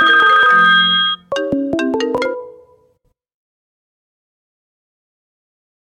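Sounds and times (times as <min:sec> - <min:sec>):
electronic telephone ringtone for an incoming call: 0:00.0 - 0:02.6.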